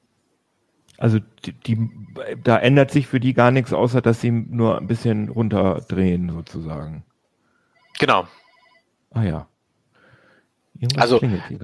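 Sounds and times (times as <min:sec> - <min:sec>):
speech: 0:01.0 - 0:07.1, 0:08.0 - 0:08.4, 0:09.1 - 0:09.5, 0:10.8 - 0:11.6
electronic mobile phone ringtone in short pulsing tones: 0:07.7 - 0:08.9.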